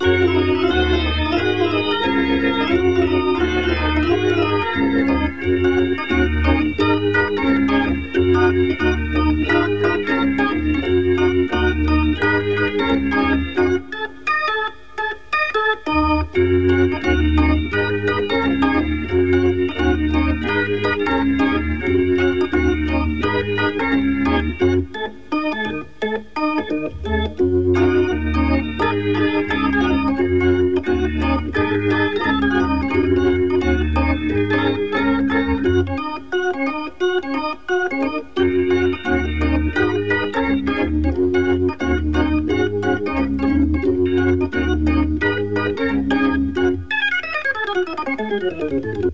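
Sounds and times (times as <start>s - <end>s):
music: 0.0s - 49.1s.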